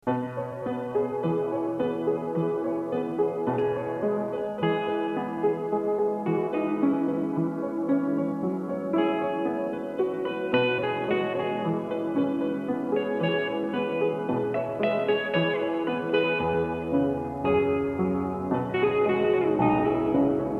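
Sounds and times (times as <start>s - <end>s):
experimental guitar: 0.0s - 20.5s
experimental piano: 0.0s - 20.5s.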